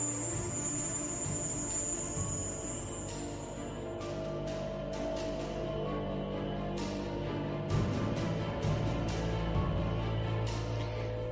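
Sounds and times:
shrill high-pitched buzzing: 0.0s - 5.1s
dense low hum: 0.0s - 11.3s.

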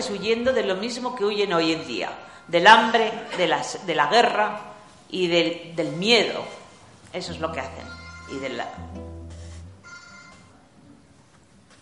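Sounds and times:
speech: 0.0s - 9.0s
mobile phone electronic ringtone melody: 7.7s - 8.8s, 9.8s - 10.6s.

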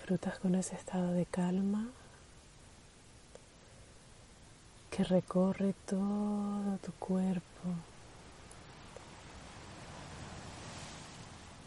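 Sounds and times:
faint wind-like hiss: 0.0s - 11.6s
speech: 0.1s - 2.0s, 5.0s - 7.9s
sea surf breaking on the shore: 8.0s - 11.6s.

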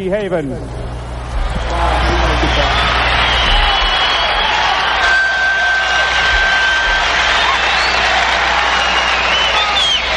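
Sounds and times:
live concert crowd roaring and cheering: 0.9s - 10.1s.

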